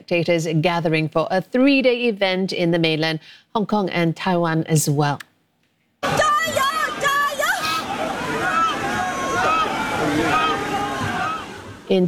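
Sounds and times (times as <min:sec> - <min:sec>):
speech: 0:00.1 - 0:05.3, 0:11.9 - 0:12.0
crowd shouting and cheering at a Dragon Boat festival in Zhejiang province China: 0:06.0 - 0:11.9
dragon boat noise: 0:06.1 - 0:12.0.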